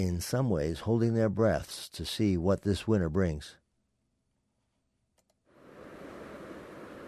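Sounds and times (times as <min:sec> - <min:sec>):
speech: 0:00.0 - 0:03.6
faint clicks: 0:05.1 - 0:05.5
river partly covered in thin ice rushing: 0:05.7 - 0:07.0.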